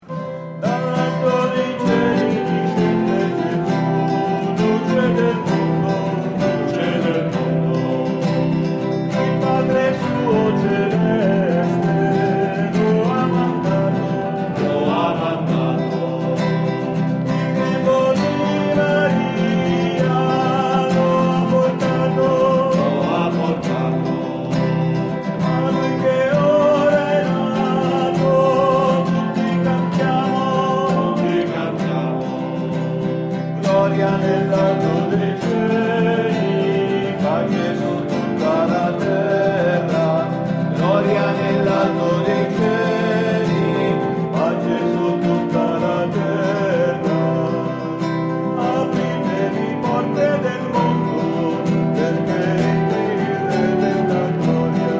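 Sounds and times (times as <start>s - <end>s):
soprano choir singing: 0.6s - 54.9s.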